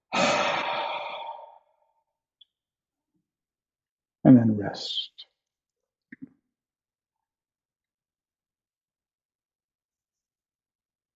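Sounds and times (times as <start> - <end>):
slow breath exhaled through the mouth during a guided breathing exercise: 0.1 - 1.9
speech: 4.3 - 5.2.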